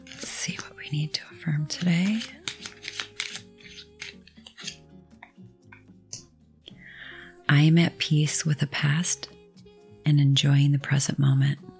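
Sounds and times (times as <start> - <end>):
deck of cards being shuffled: 0.0 - 4.9
quiet steady musical background: 0.0 - 11.7
speech: 0.9 - 2.4, 7.5 - 9.4, 10.1 - 11.7.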